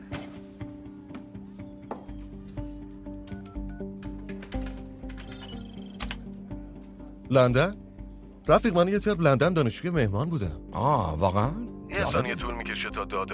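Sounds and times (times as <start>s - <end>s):
landline telephone ringing: 5.2s - 6.1s
speech: 7.3s - 7.8s, 8.5s - 13.3s.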